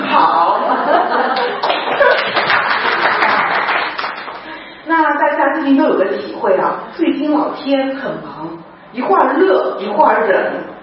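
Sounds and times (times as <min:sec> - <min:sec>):
people chuckling: 0:00.1 - 0:03.5
audience clapping: 0:01.3 - 0:04.6
speech: 0:05.7 - 0:10.7.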